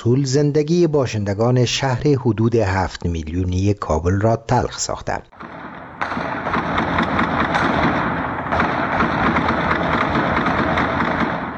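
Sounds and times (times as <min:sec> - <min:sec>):
speech: 0:00.0 - 0:06.3
heavy sustained gunfire in a city at night: 0:05.4 - 0:11.5.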